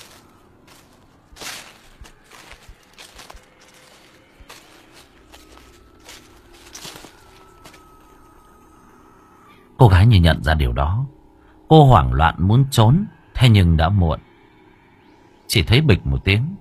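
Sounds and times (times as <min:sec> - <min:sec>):
footsteps crunching on dry leaves: 0:00.0 - 0:09.5
speech: 0:09.8 - 0:14.3, 0:15.5 - 0:16.5.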